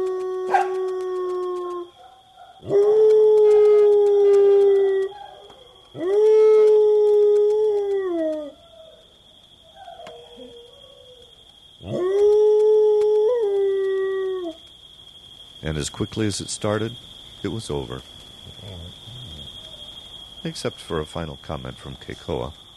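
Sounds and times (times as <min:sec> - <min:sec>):
several dogs howling together: 0:00.0 - 0:14.6
speech: 0:15.8 - 0:18.2, 0:20.4 - 0:22.6.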